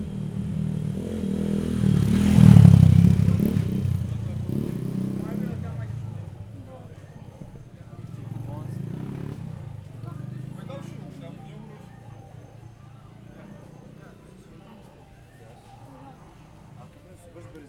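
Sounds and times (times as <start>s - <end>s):
motorbike passing from right to left on Thassos: 0.0s - 17.3s.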